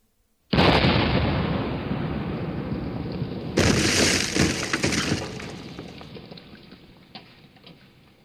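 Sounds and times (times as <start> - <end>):
warship cannon firing: 0.6 - 6.1.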